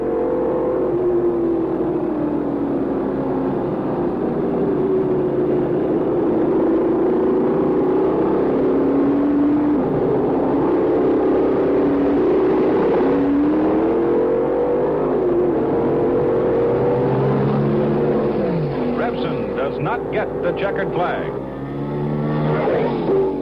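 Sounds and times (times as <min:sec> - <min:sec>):
racing car engines roaring on a race track: 0:00.0 - 0:23.4.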